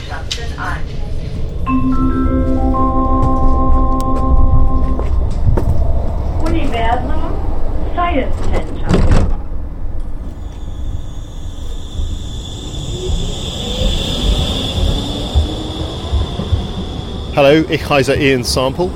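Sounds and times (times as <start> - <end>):
speech: 0.2 - 2.4, 17.4 - 18.9
electric S-Bahn commuter train pulling away, motor whine over low rumble: 1.6 - 7.9, 10.1 - 18.9
S-Bahn commuter train doors sliding and thudding shut in Berlin: 8.3 - 10.8.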